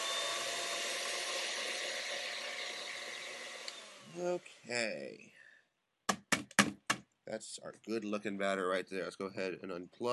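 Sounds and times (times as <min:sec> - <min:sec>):
electric hand mixer with beaters whirring in cake batter: 0:00.0 - 0:04.7
speech: 0:04.2 - 0:05.4, 0:07.3 - 0:10.1.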